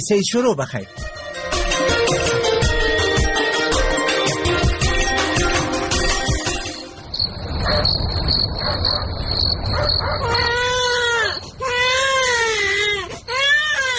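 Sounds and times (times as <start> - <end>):
speech: 0.0 - 1.2
music: 0.6 - 7.1
steady high insect-like chirring: 7.1 - 10.5
sick baby crying: 10.0 - 13.9.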